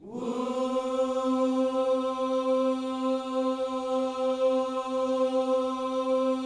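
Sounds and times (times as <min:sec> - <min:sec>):
gospel vocal whoo: 0:00.0 - 0:06.4.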